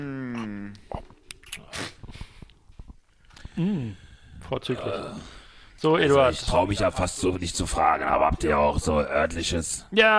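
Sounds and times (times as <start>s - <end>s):
brief hummed vocal sound: 0.0s - 0.9s, 3.4s - 4.1s
speech: 3.6s - 10.1s.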